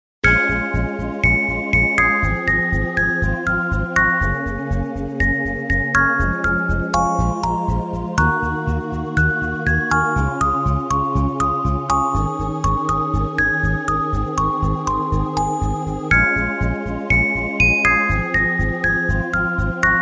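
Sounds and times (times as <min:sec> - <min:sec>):
music box melody ringtone: 0:00.2 - 0:19.9.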